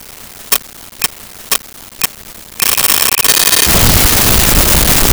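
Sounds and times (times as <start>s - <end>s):
time bomb ticking: 0.5s - 5.0s.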